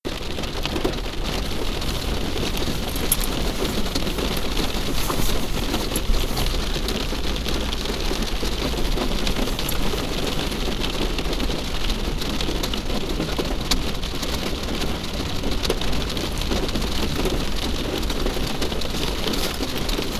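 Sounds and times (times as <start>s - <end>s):
rain on a car roof: 0.0s - 20.1s.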